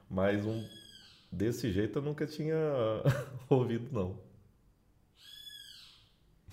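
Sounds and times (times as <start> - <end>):
speech: 0.1 - 4.3
unusual bird shrill call near the house: 0.4 - 1.4, 5.2 - 6.2
laughter: 3.0 - 3.8.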